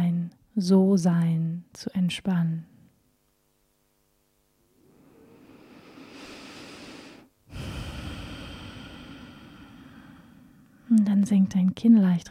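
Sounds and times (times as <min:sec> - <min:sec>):
speech: 0:00.6 - 0:02.7, 0:10.9 - 0:12.3
deep breath in and out during guided relaxation: 0:04.7 - 0:10.9.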